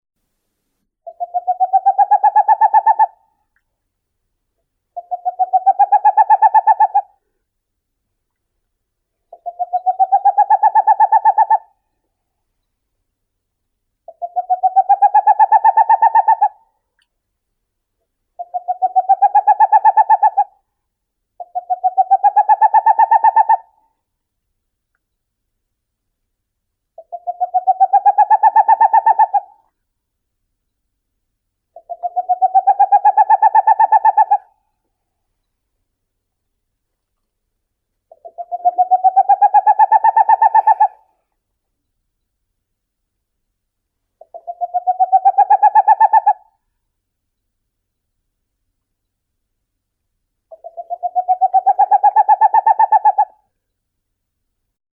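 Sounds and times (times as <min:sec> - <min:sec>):
Aegolius funereus owl: 0:01.0 - 0:03.3, 0:05.0 - 0:07.2, 0:09.3 - 0:11.8, 0:14.1 - 0:16.7, 0:18.4 - 0:20.6, 0:21.4 - 0:23.9, 0:27.0 - 0:29.7, 0:31.7 - 0:34.6, 0:38.1 - 0:41.2, 0:44.2 - 0:46.6, 0:50.5 - 0:53.5.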